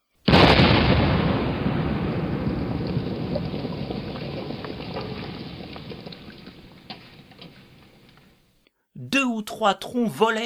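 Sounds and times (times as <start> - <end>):
single loud cannon blast: 0.3 - 8.3
long rolling rumble after cannon blast: 0.3 - 8.4
speech: 9.2 - 10.4.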